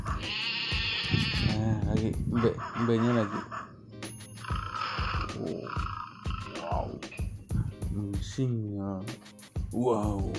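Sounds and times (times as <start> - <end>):
goat bleating: 0.1 - 1.9, 4.5 - 7.0
speech: 2.1 - 3.6, 8.3 - 10.3.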